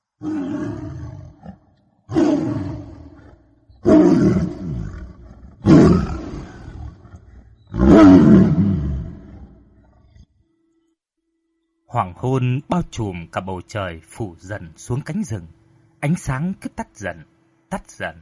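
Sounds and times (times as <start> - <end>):
tiger growling: 0.0 - 10.4
speech: 0.2 - 1.1, 12.0 - 18.2.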